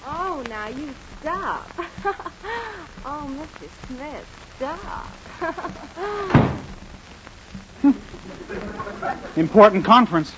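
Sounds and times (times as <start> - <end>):
speech: 0.7 - 6.7, 7.8 - 10.3
laughter: 1.8 - 2.8, 5.3 - 6.4, 7.8 - 10.2
wooden door being opened: 6.3 - 6.7.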